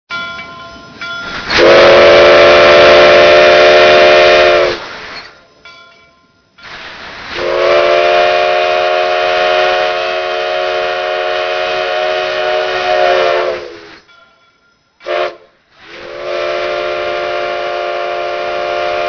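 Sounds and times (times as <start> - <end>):
train whistle ringtone for a mobile phone: 1.5 - 5.1, 7.3 - 14.0, 15.0 - 19.0.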